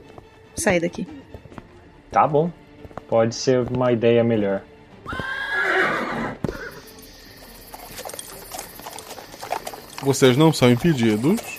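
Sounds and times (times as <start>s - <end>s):
horse hooves clip-clopping at a walking pace: 0.0s - 11.5s
speech: 0.6s - 1.2s, 2.1s - 5.3s, 10.0s - 11.5s
horse neighing: 5.0s - 11.5s.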